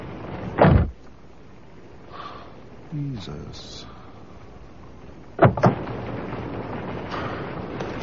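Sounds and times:
faint rumble: 0:00.0 - 0:08.0
pouring rain: 0:00.0 - 0:08.0
door slamming shut in pouring rain: 0:00.6 - 0:01.0, 0:05.4 - 0:05.8
speech: 0:02.9 - 0:03.9.

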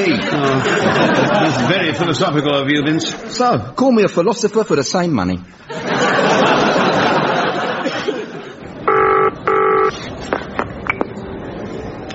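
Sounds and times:
people laughing: 0:00.0 - 0:03.4, 0:05.7 - 0:08.9
speech: 0:00.0 - 0:06.6
telephone ringing with electronic trills: 0:08.9 - 0:10.0.

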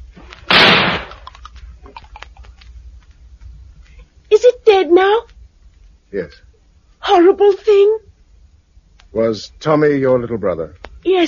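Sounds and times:
single loud gunshot fired at a creature lying in a garden: 0:00.5 - 0:01.2
speech: 0:04.9 - 0:05.3, 0:06.1 - 0:06.5, 0:07.1 - 0:08.1, 0:09.1 - 0:11.2.

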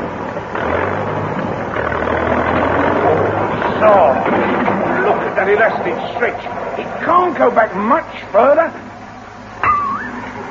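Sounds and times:
tractor engine starting and chugging: 0:00.0 - 0:10.4
speech: 0:05.5 - 0:08.9.

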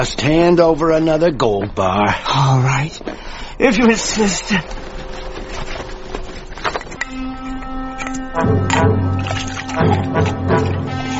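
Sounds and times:
speech: 0:00.0 - 0:04.9
water pouring into a drinking vessel: 0:08.5 - 0:11.1.

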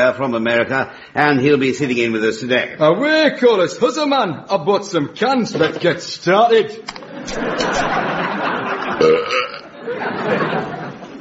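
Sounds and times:
speech: 0:00.0 - 0:08.1
laughter: 0:06.9 - 0:11.1
long loud gravelly belch: 0:09.0 - 0:09.7.

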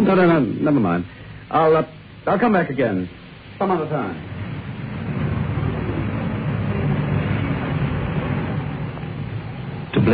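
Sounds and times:
speech: 0:00.1 - 0:04.3
car driving with low engine rumble and road noise: 0:03.6 - 0:10.1.

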